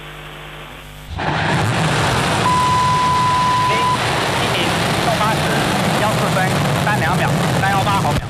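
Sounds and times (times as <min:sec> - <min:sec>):
Long March 7 Y11 carrier rocket igniting and lifting off: 0:01.1 - 0:08.2
steady beep: 0:02.4 - 0:04.1.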